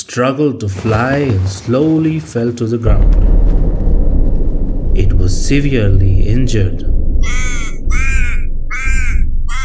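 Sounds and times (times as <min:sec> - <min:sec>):
speech: 0:00.2 - 0:03.5, 0:05.3 - 0:07.4
low rumbling background: 0:02.7 - 0:09.6
raven cawing harshly in distress: 0:07.2 - 0:09.6.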